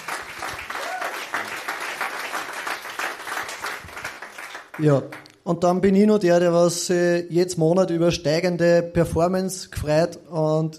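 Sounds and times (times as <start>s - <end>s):
audience applause of many hands clapping: 0.0s - 5.3s
faint voice or cheer: 0.4s - 1.7s
speech: 4.8s - 10.7s.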